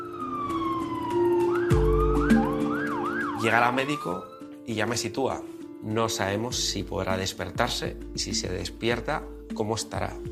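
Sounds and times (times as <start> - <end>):
ambulance siren wailing: 0.0 - 4.6
speech: 3.4 - 10.3.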